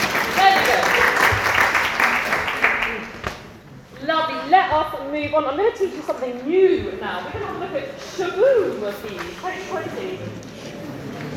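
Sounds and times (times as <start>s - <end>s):
audience applause: 0.0s - 3.2s
voices beneath audience applause: 0.0s - 11.3s
speech: 5.3s - 10.5s.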